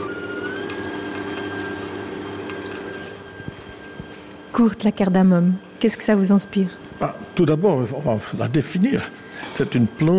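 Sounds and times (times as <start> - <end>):
electric mixer on low speed whipping cream: 0.0 - 9.0
speech: 4.6 - 10.1.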